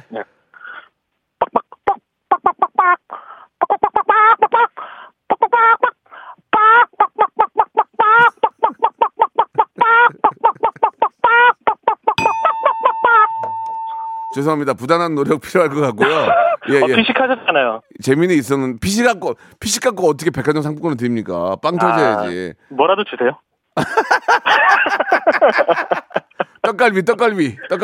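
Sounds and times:
speech: 0.1 - 0.4, 14.4 - 24.1, 25.5 - 25.9, 26.8 - 27.8
voice imitating startled chickens clucking in a poultry farm coop: 1.4 - 12.2
laughter: 8.2 - 11.2, 15.8 - 17.8, 23.8 - 26.8
sustained steady electronic-sounding tone: 12.2 - 14.7.

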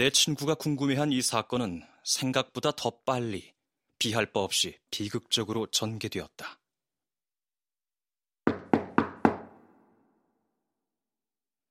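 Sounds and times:
speech: 0.0 - 6.6
knocking on a wooden door: 8.4 - 9.7.

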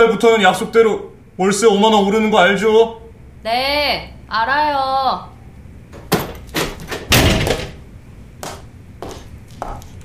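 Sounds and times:
speech: 0.0 - 5.3
door pushed shut with rattling and a thump: 6.1 - 7.8.

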